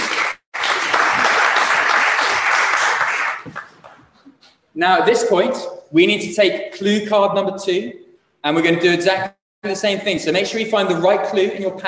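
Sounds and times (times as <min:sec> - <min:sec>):
audience of many people applauding: 0:00.0 - 0:04.0
scattered claps: 0:00.0 - 0:04.2
speech: 0:04.8 - 0:11.8.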